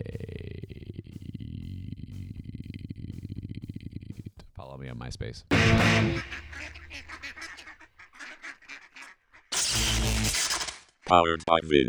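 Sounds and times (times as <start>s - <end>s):
speech: 4.7s - 6.8s, 11.1s - 11.8s
duck quacking: 5.5s - 10.6s.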